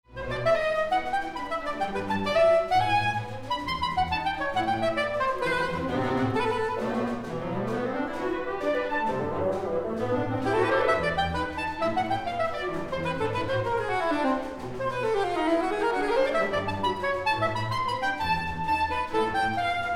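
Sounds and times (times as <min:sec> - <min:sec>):
soprano saxophone concerto with orchestra: 0:00.1 - 0:19.9.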